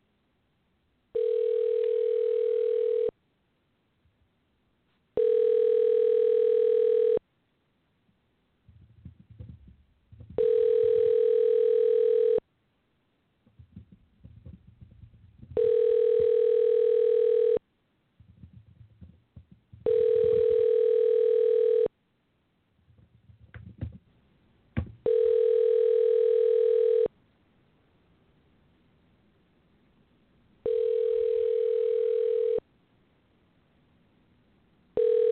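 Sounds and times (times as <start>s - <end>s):
phone ringback tone while a number is dialed: 1.2s - 3.1s, 5.2s - 7.2s, 10.4s - 12.4s, 15.6s - 17.6s, 19.8s - 21.9s, 25.0s - 27.1s, 30.6s - 32.6s, 35.0s - 35.2s.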